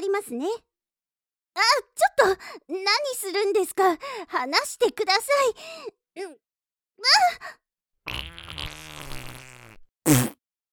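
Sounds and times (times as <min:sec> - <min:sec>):
speech: 0:00.2 - 0:00.7, 0:01.6 - 0:06.4, 0:07.0 - 0:08.2
person farting: 0:08.1 - 0:10.4.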